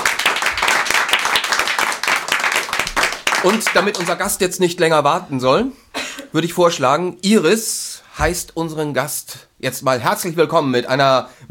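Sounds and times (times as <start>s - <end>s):
crowd applauding: 0.0s - 4.4s
speech: 3.4s - 11.4s.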